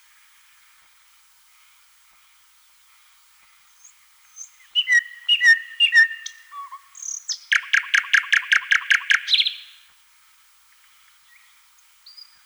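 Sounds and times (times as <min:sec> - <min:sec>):
thrush nightingale song with whistles and clicking notes: 0:03.8 - 0:09.8.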